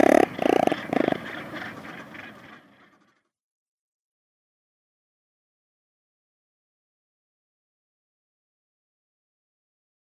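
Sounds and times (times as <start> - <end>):
Razorbill growling calls: 0.0 - 3.2.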